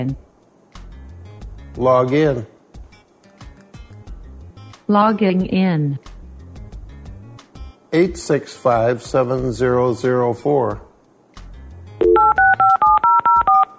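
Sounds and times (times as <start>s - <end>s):
speech: 0.0s - 0.3s, 1.8s - 2.5s, 4.9s - 6.1s, 7.9s - 10.8s
telephone touch-tone dialing beeps from a voice-controlled computer phone: 12.0s - 13.7s.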